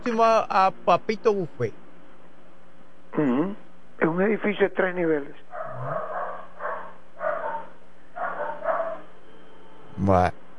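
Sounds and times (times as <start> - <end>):
speech: 0.1 - 1.8, 3.1 - 6.1, 10.0 - 10.4
several dogs barking: 5.5 - 9.2.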